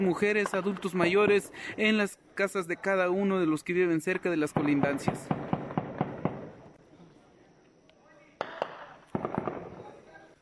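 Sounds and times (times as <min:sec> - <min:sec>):
speech: 0:00.0 - 0:05.4
noisy outdoor background: 0:00.0 - 0:10.3
gunfire during an armed attack on homes in Aldama Chiapas Mexico: 0:04.5 - 0:06.6, 0:08.4 - 0:10.0.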